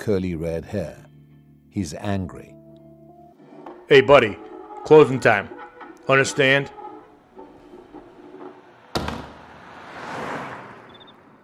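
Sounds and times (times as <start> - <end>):
speech: 0.0 - 1.0, 1.8 - 2.6, 3.9 - 6.8
door slamming shut: 7.7 - 9.6.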